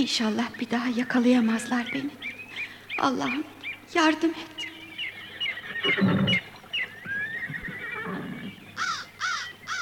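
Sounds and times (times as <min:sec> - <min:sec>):
speech: 0:00.0 - 0:02.3, 0:03.0 - 0:04.6, 0:05.8 - 0:06.5
horse neighing beside a stream: 0:05.2 - 0:09.8.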